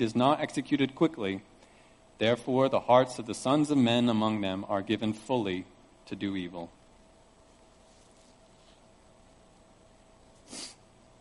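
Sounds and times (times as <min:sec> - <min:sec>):
speech: 0:00.0 - 0:01.5, 0:02.2 - 0:06.8
nose sniffling: 0:10.4 - 0:10.9.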